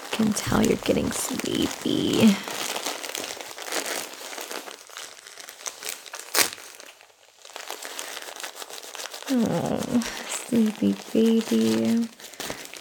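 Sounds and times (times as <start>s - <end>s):
tape crinkling and rustling as it is torn and pressed on as a bandage: 0.0s - 12.7s
speech: 0.2s - 2.7s, 9.3s - 12.2s.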